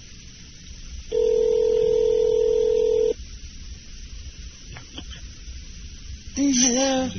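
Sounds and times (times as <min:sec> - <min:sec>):
buzzing phone ringback tone on the caller's end: 0:01.1 - 0:03.2.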